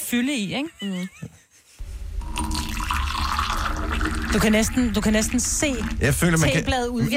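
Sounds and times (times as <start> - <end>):
speech: 0.1 - 1.4, 4.4 - 7.1
hot water poured in a steady stream: 2.0 - 7.0.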